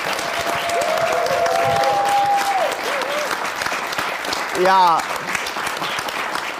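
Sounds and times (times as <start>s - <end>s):
audience applause: 0.0s - 6.5s
speech: 4.6s - 5.1s.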